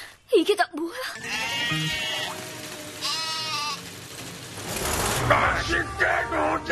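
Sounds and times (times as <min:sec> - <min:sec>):
speech: 0:00.4 - 0:00.9
sheep bleating: 0:01.2 - 0:02.4, 0:03.0 - 0:03.8
steady noise: 0:01.7 - 0:06.6.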